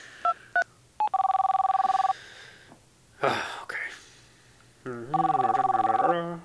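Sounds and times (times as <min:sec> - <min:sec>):
two-tone telephone keypad beeps dialing out: 0:00.3 - 0:02.1, 0:05.1 - 0:06.1
rapid steady telephone ringing tone pulses: 0:01.0 - 0:02.1, 0:05.1 - 0:06.2.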